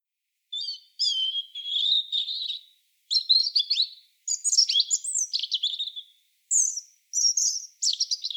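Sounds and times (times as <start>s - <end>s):
European robin Erithacus rubecula singing: 0.5s - 8.3s.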